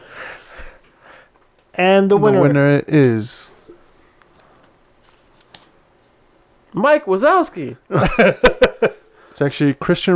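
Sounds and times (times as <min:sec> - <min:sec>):
speech: 0:01.8 - 0:03.5, 0:06.8 - 0:10.1
papers rustling as someone rummages through a pile of papers: 0:04.1 - 0:06.2
laughter: 0:07.9 - 0:09.1.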